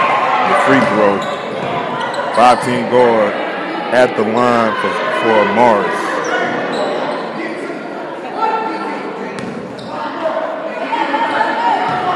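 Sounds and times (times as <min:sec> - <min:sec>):
crowd noise and chatter at a men's basketball game: 0:00.0 - 0:12.1
speech: 0:00.5 - 0:01.4, 0:02.4 - 0:06.0
basketball dribbled on a court: 0:09.4 - 0:09.9.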